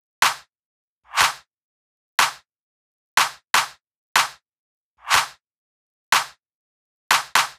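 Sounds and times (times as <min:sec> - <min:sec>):
deep house electronic drum clap: 0:00.2 - 0:00.5, 0:01.1 - 0:01.5, 0:02.2 - 0:02.4, 0:03.2 - 0:04.4, 0:05.0 - 0:05.4, 0:06.1 - 0:06.4, 0:07.1 - 0:07.5.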